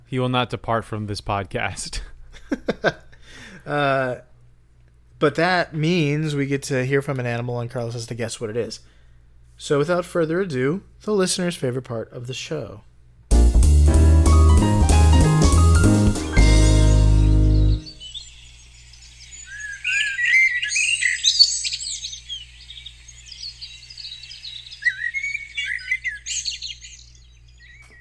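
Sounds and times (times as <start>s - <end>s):
speech: 0.1s - 4.3s, 5.2s - 8.9s, 9.6s - 12.9s
loud music: 13.3s - 17.9s
Common blackbird song: 16.3s - 27.9s.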